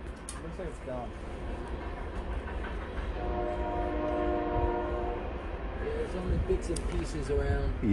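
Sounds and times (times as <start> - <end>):
train rumbling by: 0.0 - 7.9
speech: 0.4 - 1.8, 3.2 - 3.8, 6.0 - 7.9
train horn blowing a multi-tone chord: 3.2 - 5.4.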